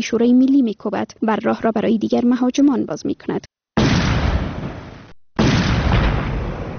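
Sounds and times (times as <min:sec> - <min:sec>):
speech: 0:00.0 - 0:03.6
loud heavy explosion during an attack: 0:03.8 - 0:06.7.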